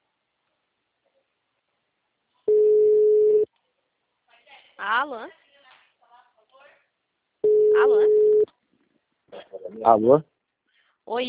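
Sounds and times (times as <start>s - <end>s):
telephone tone while placing a call: 2.5s - 3.5s, 7.4s - 8.5s
speech: 5.0s - 5.4s, 9.7s - 10.3s, 11.1s - 11.2s.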